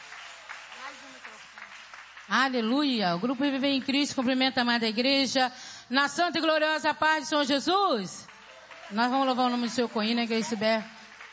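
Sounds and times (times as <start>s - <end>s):
audience in a church clapping: 0.0s - 4.2s, 8.2s - 11.3s
speech: 2.3s - 8.2s, 8.9s - 11.3s.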